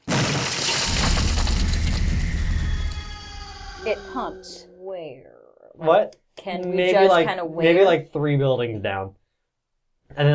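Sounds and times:
crashing roar of breaking debris: 0.0 - 3.7
loud boom of something smashing through walls: 0.0 - 4.6
speech: 3.9 - 9.2, 10.1 - 10.3.

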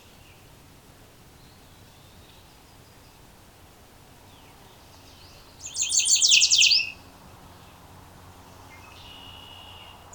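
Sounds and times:
background hiss: 0.0 - 10.1
Gray Catbird squeaky buzzy song phrase at Beverly Swamp: 5.6 - 6.9.

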